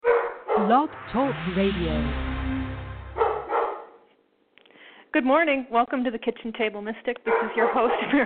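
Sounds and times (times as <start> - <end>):
dog barking at a kitchen table: 0.0 - 0.7, 7.3 - 8.2
speech: 0.6 - 2.3, 5.2 - 8.2
low steady hum: 0.7 - 3.5.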